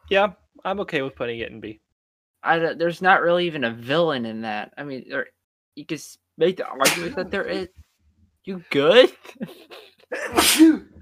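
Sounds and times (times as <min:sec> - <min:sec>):
speech: 0:00.1 - 0:01.8, 0:02.4 - 0:07.8, 0:08.4 - 0:10.9
single sharp sneeze: 0:06.8 - 0:07.5, 0:10.1 - 0:10.9.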